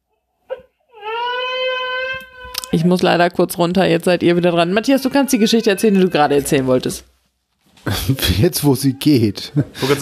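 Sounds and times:
baby crying: 0:00.5 - 0:02.8, 0:04.7 - 0:06.5
speech: 0:02.8 - 0:07.1, 0:07.8 - 0:09.9.

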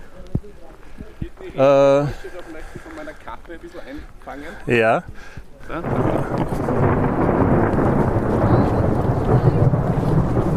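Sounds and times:
rain hissing: 0:00.0 - 0:10.5
speech: 0:01.4 - 0:07.0, 0:09.3 - 0:09.8
thunder rumbling: 0:05.6 - 0:10.5.

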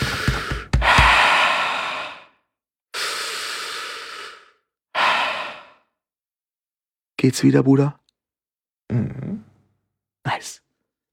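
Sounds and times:
deep breathing: 0:00.0 - 0:06.0
speech: 0:07.2 - 0:08.0, 0:10.4 - 0:10.6.

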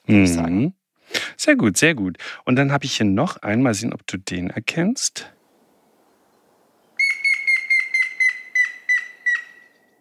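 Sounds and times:
speech: 0:00.1 - 0:00.8, 0:01.4 - 0:05.4
Grey-headed Woodpecker whistled call: 0:07.0 - 0:10.0.

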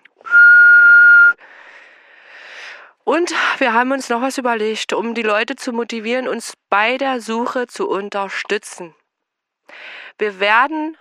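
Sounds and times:
whistled note: 0:00.2 - 0:01.4
speech: 0:03.1 - 0:09.0, 0:09.7 - 0:11.0.

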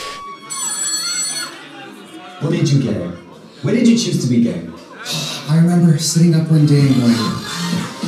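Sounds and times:
telephone ringing with an electronic trilling tone: 0:00.0 - 0:01.6
speech: 0:02.4 - 0:07.9.

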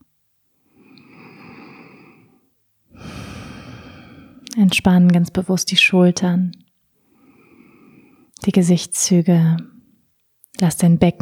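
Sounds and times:
deep breathing into the lower belly during a relaxation exercise: 0:00.7 - 0:04.6, 0:07.1 - 0:08.3
speech: 0:04.6 - 0:06.6, 0:08.4 - 0:09.7, 0:10.6 - 0:11.2.

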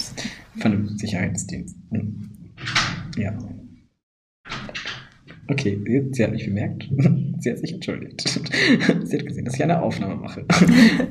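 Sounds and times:
speech: 0:00.6 - 0:02.4, 0:03.2 - 0:03.7, 0:05.5 - 0:11.0
door opening and closing: 0:02.2 - 0:03.5, 0:04.5 - 0:05.5
laughter: 0:08.3 - 0:09.4, 0:10.4 - 0:11.0.

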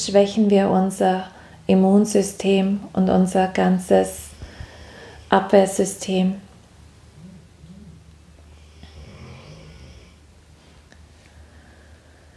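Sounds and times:
speech: 0:00.0 - 0:04.2, 0:05.3 - 0:06.4
dog lying relaxed snoring: 0:07.1 - 0:10.2.

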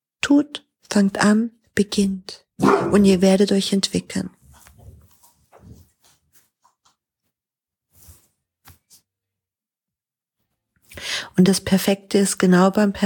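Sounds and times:
speech: 0:00.3 - 0:04.4, 0:11.4 - 0:13.0
dog barking: 0:02.6 - 0:03.2.

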